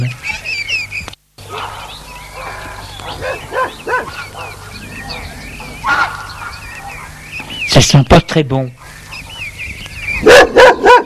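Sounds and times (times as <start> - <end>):
speech: 0.0 - 0.3, 7.8 - 8.8
large dog barking while running: 1.5 - 7.1, 10.2 - 11.0.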